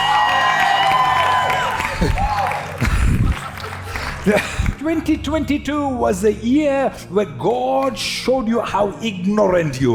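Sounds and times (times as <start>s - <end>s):
whoops: 0.0s - 2.9s
large audience shouting and cheering: 0.0s - 3.8s
speech: 2.0s - 2.2s, 4.2s - 9.9s.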